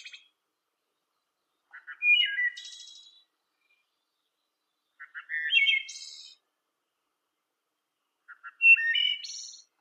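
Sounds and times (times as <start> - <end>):
blackbird song: 0.0 - 6.6, 7.7 - 9.7.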